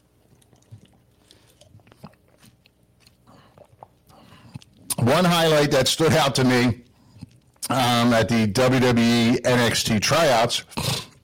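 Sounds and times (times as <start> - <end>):
person sipping coconut water with wet slurps, clicks and swallows: 0.1 - 5.0, 6.8 - 7.6
speech: 5.0 - 6.8, 7.7 - 10.9.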